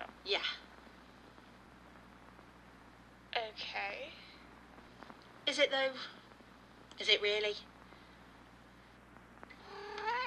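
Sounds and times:
speech: 0:00.2 - 0:00.6, 0:05.5 - 0:06.2, 0:07.0 - 0:07.7
cat meowing: 0:09.6 - 0:10.2.

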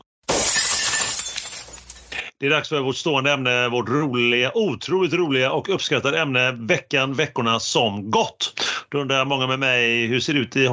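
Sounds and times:
glass bottle smashing against a wall: 0:00.2 - 0:02.2
tinkling glass shards scattering: 0:00.3 - 0:02.2
speech: 0:02.4 - 0:10.7.

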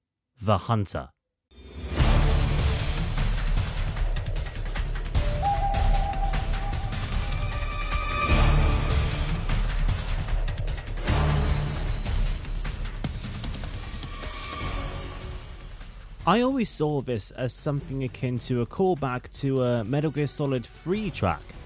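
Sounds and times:
speech: 0:00.4 - 0:01.2, 0:16.3 - 0:21.6
driving action music from a stealth video game alert theme: 0:01.6 - 0:21.6
heavy low percussion: 0:02.0 - 0:12.7.

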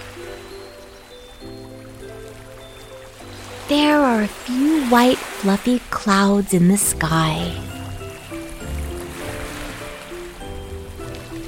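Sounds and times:
calm sustained musical tones: 0:00.0 - 0:06.0, 0:06.6 - 0:11.4
gentle waves lapping: 0:00.0 - 0:11.4
speech: 0:03.7 - 0:07.7.

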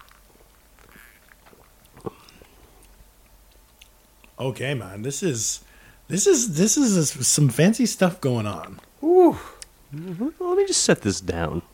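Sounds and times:
person sipping a mint coffee cocktail: 0:00.0 - 0:03.0
small gulp: 0:00.8 - 0:02.9
speech: 0:04.4 - 0:11.7.

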